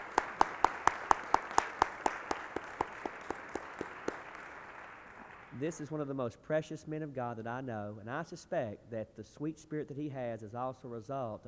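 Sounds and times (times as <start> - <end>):
audience clapping in a steady rhythm: 0.0 - 5.9
speech: 5.6 - 11.4.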